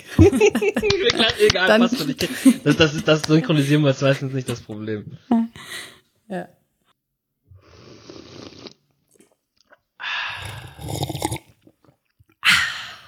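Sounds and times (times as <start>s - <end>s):
laughter: 0.0s - 5.2s
speech: 0.0s - 6.6s
person slurping hot coffee: 7.6s - 12.3s.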